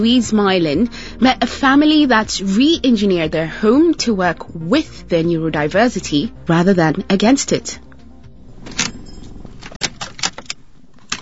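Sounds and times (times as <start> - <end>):
speech: 0.0 - 7.9
car engine rumbling as the car pulls up at a suburban unit in Launceston Tasmania: 8.0 - 11.2
bright clinks and rattles: 8.5 - 11.2.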